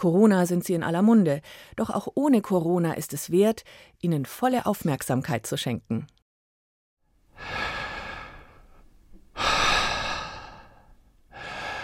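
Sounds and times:
speech: 0:00.0 - 0:06.2, 0:07.4 - 0:07.6
slow deep breaths: 0:01.4 - 0:01.8, 0:03.6 - 0:04.0, 0:07.3 - 0:11.8.

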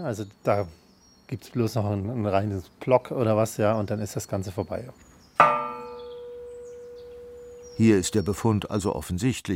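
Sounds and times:
speech: 0:00.0 - 0:05.6, 0:07.8 - 0:09.5
cracked bronze bell struck: 0:05.4 - 0:08.4.

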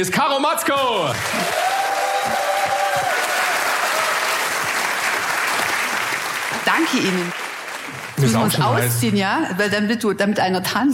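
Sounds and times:
speech: 0:00.0 - 0:01.6, 0:06.6 - 0:07.4, 0:08.2 - 0:10.9
sustained applause from a large audience: 0:00.8 - 0:09.0.

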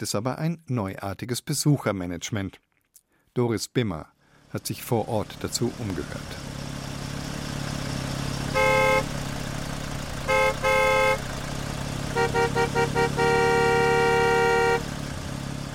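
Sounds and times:
speech: 0:00.0 - 0:02.7, 0:03.4 - 0:06.5
rumble of idling traffic at an overfull parking lot: 0:04.2 - 0:15.7
car horns honking at an overfull parking lot: 0:08.5 - 0:15.4.

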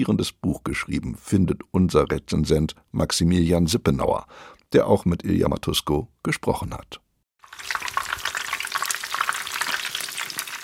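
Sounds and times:
speech: 0:00.0 - 0:07.0
French fries sizzling in hot oil in a deep fryer: 0:07.4 - 0:10.6.

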